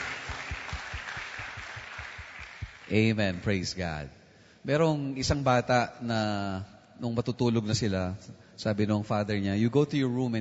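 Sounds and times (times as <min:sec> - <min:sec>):
congregation clapping during a church worship service: 0:00.0 - 0:03.6
speech: 0:02.9 - 0:10.3.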